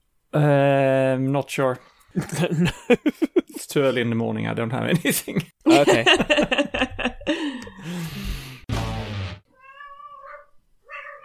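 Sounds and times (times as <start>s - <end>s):
speech: 0.3s - 6.7s
laughter: 2.2s - 3.6s, 4.9s - 8.1s
excited cat meowing loudly: 9.5s - 11.2s.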